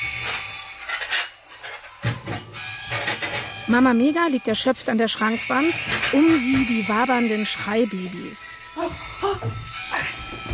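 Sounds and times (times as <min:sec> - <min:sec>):
crockery clattering and clinking in a mobile phone game: 0:00.0 - 0:03.8, 0:05.2 - 0:07.4
speech: 0:03.7 - 0:09.8.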